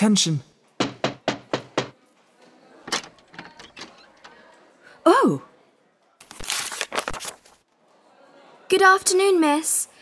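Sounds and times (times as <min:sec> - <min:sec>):
speech: 0:00.0 - 0:00.5, 0:05.3 - 0:05.5, 0:08.7 - 0:09.9
knocking on a door: 0:00.8 - 0:02.0.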